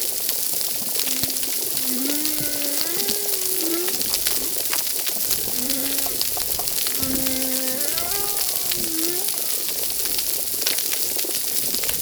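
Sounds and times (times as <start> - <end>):
underwater hiss and crackle: 0.0 - 11.9
humpback whale song: 0.8 - 10.0.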